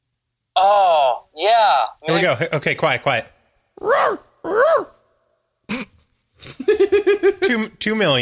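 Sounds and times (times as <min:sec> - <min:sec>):
person imitating a dog barking for a video game: 0:00.6 - 0:02.2, 0:03.8 - 0:05.0
speech: 0:00.6 - 0:05.0, 0:05.7 - 0:08.2.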